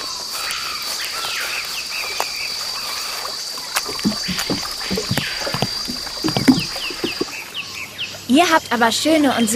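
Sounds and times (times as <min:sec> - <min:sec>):
rainforest insects chirping: 0:00.0 - 0:08.8
rainforest frogs: 0:00.0 - 0:09.5
dugout canoe paddle strokes splashing through water: 0:02.0 - 0:07.4
speech: 0:08.3 - 0:09.5.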